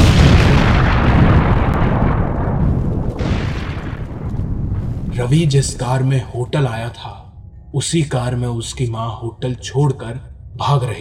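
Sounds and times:
huge explosion: 0.0 - 6.4
speech: 5.3 - 10.9.

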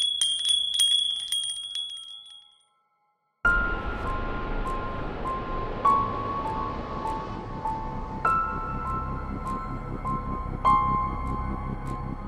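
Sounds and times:
hanging chimes ringing: 0.0 - 2.7
dense rumbling background: 3.5 - 12.2.

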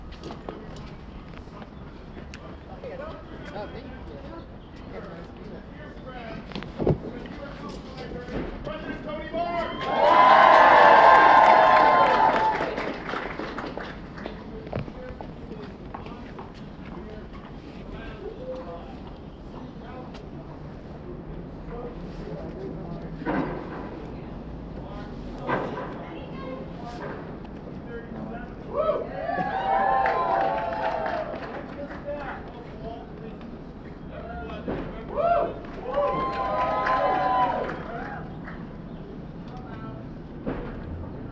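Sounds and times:
protest crowd shouting or cheering: 9.4 - 13.0, 28.7 - 31.5, 35.1 - 38.3.

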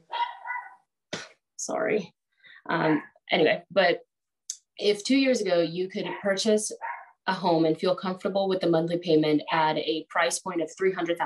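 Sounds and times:
dog barking: 0.0 - 0.9, 6.0 - 7.2
speech: 1.6 - 4.1, 4.8 - 11.2.

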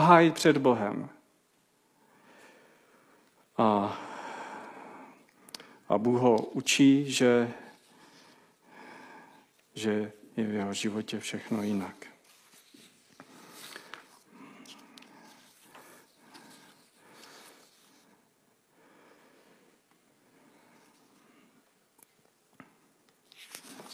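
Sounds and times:
speech: 0.1 - 1.2, 3.6 - 4.1, 5.9 - 7.6, 9.8 - 12.1
paper rustling and crinkling: 11.4 - 18.1, 23.2 - 23.9.

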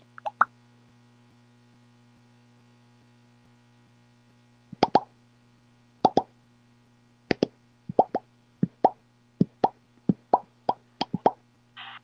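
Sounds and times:
low electrical hum: 0.0 - 12.0
phone playing popping sound effects: 4.8 - 5.1, 6.1 - 6.3, 7.3 - 11.4.

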